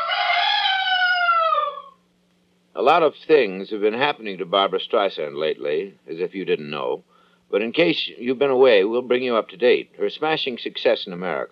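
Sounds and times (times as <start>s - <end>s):
rooster crowing: 0.0s - 2.0s
speech: 2.8s - 11.5s.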